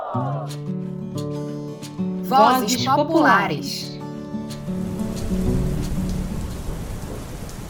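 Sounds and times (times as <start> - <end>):
speech: 0.1 - 3.9
steady heavy rain: 4.6 - 7.6
deep rolling rumble of thunder: 5.4 - 7.6.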